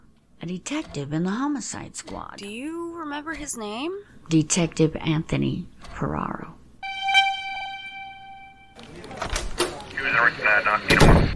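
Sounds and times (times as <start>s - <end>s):
speech: 0.4s - 6.6s, 10.2s - 11.2s
steady sustained tone: 6.8s - 8.8s
door flung open with a clatter and thump: 9.1s - 9.8s.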